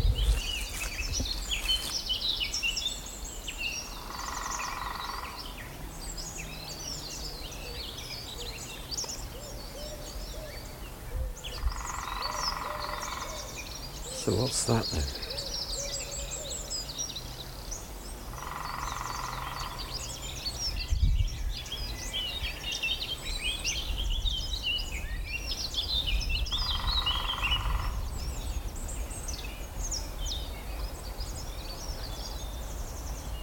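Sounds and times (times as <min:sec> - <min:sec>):
songbirds chirping outdoors: 0:00.0 - 0:33.4
lesser spotted woodpecker long drawn-out call: 0:03.9 - 0:05.5, 0:11.6 - 0:16.6, 0:18.3 - 0:19.9, 0:26.5 - 0:28.1
speech: 0:14.3 - 0:15.2.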